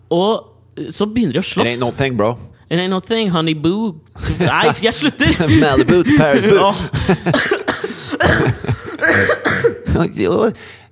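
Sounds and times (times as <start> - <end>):
speech: 0.1 - 7.6, 10.0 - 10.8
laughter: 4.2 - 10.0
person coughing: 5.3 - 10.1.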